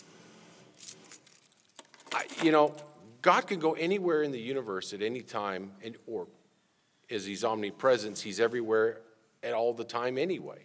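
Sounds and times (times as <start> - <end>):
car keys jangling: 0.7 - 3.0
metallic clink: 0.8 - 3.0
speech: 2.2 - 6.4, 7.1 - 10.6.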